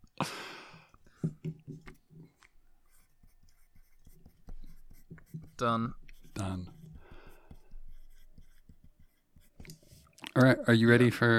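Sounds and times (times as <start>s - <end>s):
eraser rubbing: 2.8s - 10.0s
pen strokes handwriting a word: 2.9s - 10.0s
speech: 5.6s - 6.8s, 10.4s - 11.3s.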